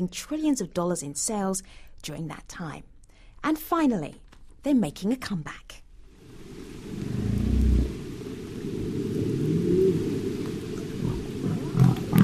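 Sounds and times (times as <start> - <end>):
speech: 0.0 - 5.8
low underwater wash: 6.0 - 12.2
humpback whale song: 6.8 - 12.2.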